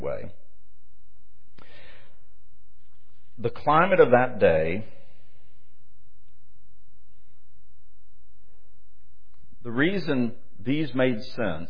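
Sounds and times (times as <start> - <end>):
single soft airy exhale or sigh: 1.6 - 2.3
speech: 3.4 - 5.0, 9.8 - 11.6.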